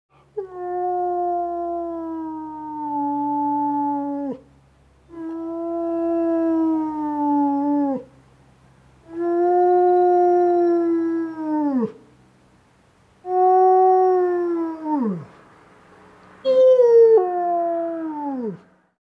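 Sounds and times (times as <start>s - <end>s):
wolf howling: 0.4s - 4.4s, 5.1s - 8.1s, 9.1s - 12.0s, 13.2s - 15.4s, 16.4s - 18.7s.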